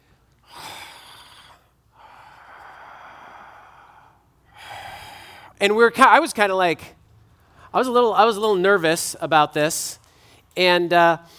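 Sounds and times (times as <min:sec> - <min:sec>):
voice imitating heavy gruff breathing: 0:00.4 - 0:05.6
speech: 0:05.6 - 0:07.0, 0:07.7 - 0:10.0, 0:10.6 - 0:11.3.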